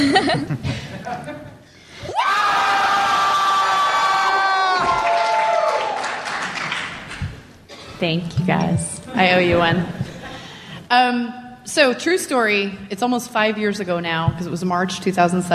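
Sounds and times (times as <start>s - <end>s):
speech: 0.0s - 1.5s, 8.0s - 10.0s, 10.9s - 15.5s
large audience yelling and cheering: 2.0s - 6.4s.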